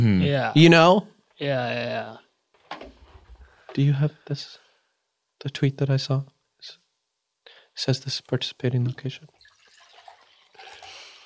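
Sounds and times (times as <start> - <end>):
speech: 0.0 - 2.2, 3.7 - 4.6, 5.4 - 6.8, 7.8 - 9.4
water pouring into a glass: 9.3 - 11.2.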